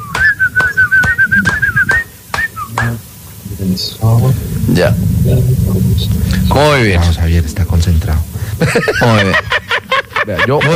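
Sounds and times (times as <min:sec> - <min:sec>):
person whistling a wavering tune: 0:00.0 - 0:02.9
sharp hand claps: 0:00.1 - 0:03.0
speech: 0:03.6 - 0:09.6, 0:10.3 - 0:10.7
laughter: 0:08.6 - 0:10.7.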